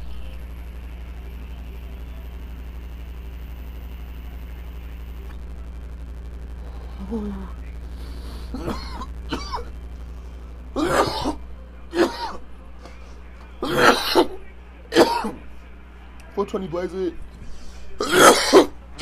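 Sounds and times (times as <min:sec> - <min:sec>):
speech: 0:07.1 - 0:07.6, 0:16.4 - 0:17.3
coughing and throat clearing: 0:08.5 - 0:09.7, 0:10.8 - 0:12.4, 0:13.6 - 0:15.4, 0:18.0 - 0:18.8.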